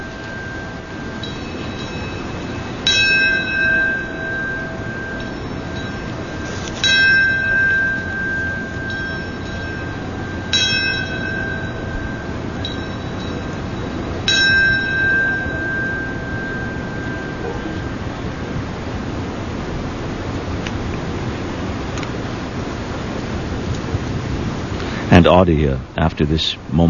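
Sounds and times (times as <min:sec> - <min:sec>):
memorial bell tolling: 0:00.0 - 0:19.2
outdoor noise: 0:00.0 - 0:26.8
speech: 0:25.3 - 0:26.8.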